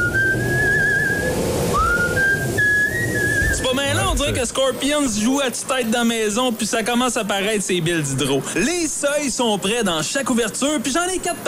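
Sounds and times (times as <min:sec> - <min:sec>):
moderate wind whistling through drafty old house windows: 0:00.0 - 0:05.9
speech: 0:04.2 - 0:11.4.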